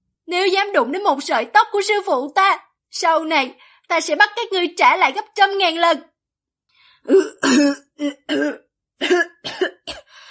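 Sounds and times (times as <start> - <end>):
speech: 0.3 - 6.1, 7.0 - 9.8
raspy coughing: 7.1 - 10.2.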